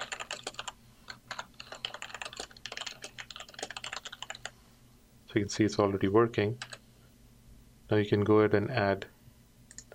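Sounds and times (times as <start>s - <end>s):
typing on a computer keyboard: 0.0s - 4.5s, 6.6s - 6.8s
faint low hum: 0.0s - 9.9s
speech: 5.3s - 6.7s, 7.9s - 9.1s.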